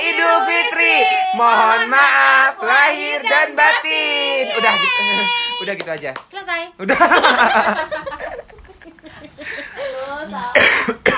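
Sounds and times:
speech: 0.4 - 8.4, 9.4 - 11.1
laughter: 6.8 - 10.0
person coughing: 10.5 - 11.1.

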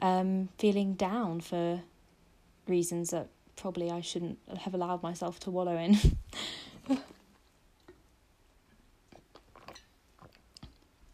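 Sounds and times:
speech: 0.1 - 1.9, 2.7 - 7.2
person sipping a drink: 9.1 - 10.9.

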